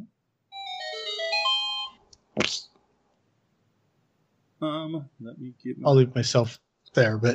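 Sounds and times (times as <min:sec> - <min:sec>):
phone ringtone electronic melody: 0:00.6 - 0:02.0
speech: 0:02.4 - 0:02.7, 0:04.6 - 0:07.3.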